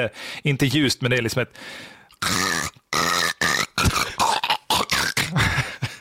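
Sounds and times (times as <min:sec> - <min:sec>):
speech: 0:00.0 - 0:02.8
person's voice imitating a squirrel's chattering call: 0:02.2 - 0:05.4.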